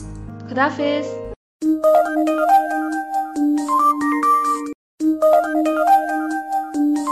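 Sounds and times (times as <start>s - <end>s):
melodic phone ringtone during outgoing call: 1.6s - 7.1s.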